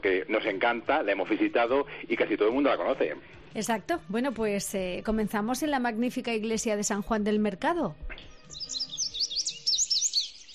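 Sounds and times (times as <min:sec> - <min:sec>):
speech: 0:00.0 - 0:08.9
small birds chirping: 0:08.0 - 0:10.5.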